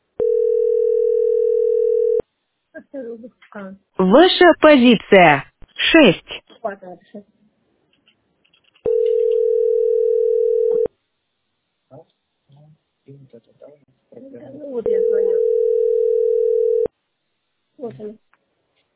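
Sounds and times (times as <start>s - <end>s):
telephone dial tone while a call is being placed: 0.2s - 2.2s, 8.9s - 10.9s, 14.9s - 16.9s
speech: 3.0s - 7.4s, 13.1s - 16.1s, 17.8s - 18.2s.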